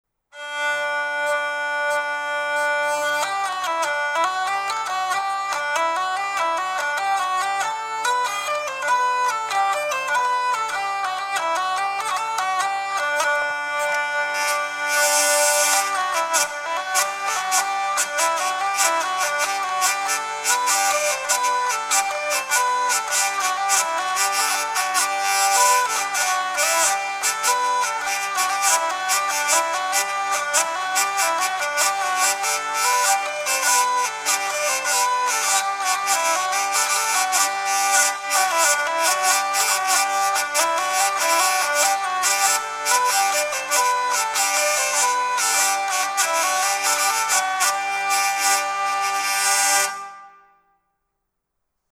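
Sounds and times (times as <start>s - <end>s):
hurdy-gurdy playing: 0.3s - 50.5s.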